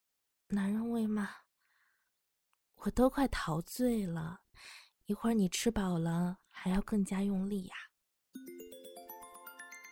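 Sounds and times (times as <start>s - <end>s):
speech: 0.5s - 1.4s, 2.8s - 8.6s
mobile phone ringtone: 8.4s - 9.9s.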